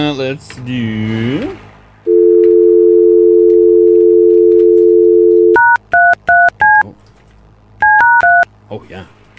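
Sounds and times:
speech: 0.0s - 1.7s, 8.7s - 9.2s
telephone dial tone: 2.1s - 6.5s.

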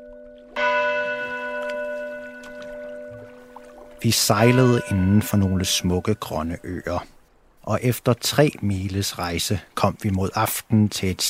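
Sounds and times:
church bell ringing: 0.0s - 6.8s
speech: 4.0s - 11.2s.

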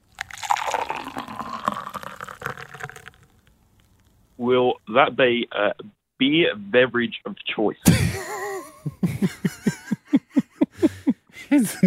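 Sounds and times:
coffee being poured: 0.0s - 4.0s
speech: 4.4s - 8.3s, 8.9s - 9.7s, 11.5s - 11.8s
laughter: 7.8s - 11.8s.

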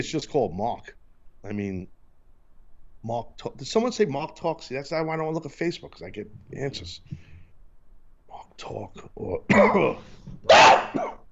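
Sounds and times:
speech: 0.0s - 2.0s, 3.0s - 7.3s, 8.3s - 11.2s
person's harsh dog-like barking cough clearing throat: 9.5s - 11.3s.

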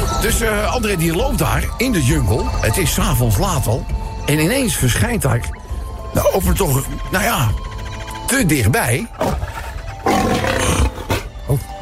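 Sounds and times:
speech: 0.2s - 7.7s, 8.3s - 9.4s
lion growling grunts: 9.0s - 11.8s
lion roaring: 9.1s - 11.3s.

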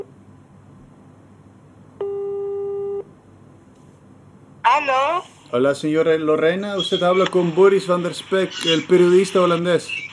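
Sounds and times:
telephone line tone while placing a call: 2.0s - 3.1s
speech: 4.8s - 10.1s.

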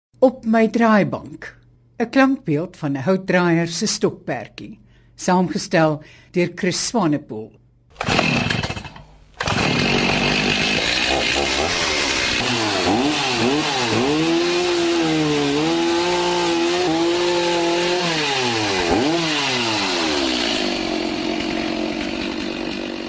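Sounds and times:
speech: 0.2s - 8.3s
chainsaw cutting a piece of wood: 8.0s - 23.0s.

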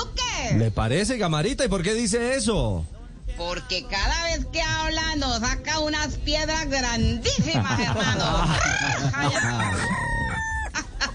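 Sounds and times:
speech: 0.5s - 10.0s
laughter: 7.2s - 11.1s
hens clucking and squawking: 8.2s - 11.1s
rooster crowing: 8.5s - 10.8s.

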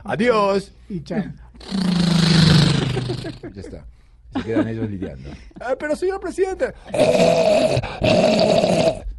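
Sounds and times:
speech: 0.0s - 9.1s
voice imitating snarling zombie growls: 1.6s - 3.4s, 6.9s - 9.1s
laughter: 2.7s - 3.8s, 4.4s - 6.0s.

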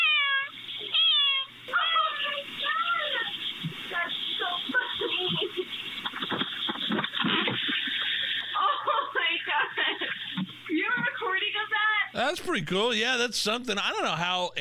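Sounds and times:
cat meowing into a doorbell camera microphone: 0.0s - 2.4s
hiss: 0.0s - 14.5s
laughter: 4.0s - 10.5s
speech: 12.4s - 14.5s.

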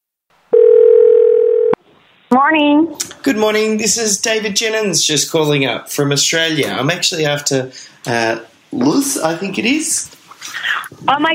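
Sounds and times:
telephone dial tone on a phone in Melbourne Australia: 0.6s - 1.8s
speech: 2.3s - 11.3s.

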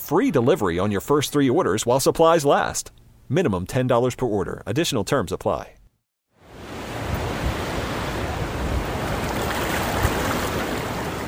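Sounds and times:
speech: 0.1s - 5.8s
ocean surf washing onto a sandy beach: 6.4s - 11.2s.

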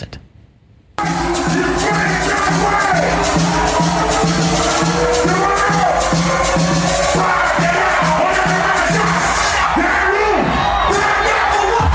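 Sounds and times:
loud dense crowd cheering and whooping at a DJ party: 1.0s - 11.9s
pounding dance music with a steady thumping beat: 1.0s - 11.9s.

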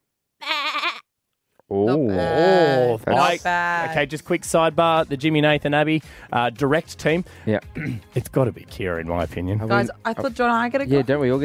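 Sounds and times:
person imitating a goat bleat: 0.4s - 1.1s, 1.8s - 3.9s
speech: 1.7s - 11.4s.

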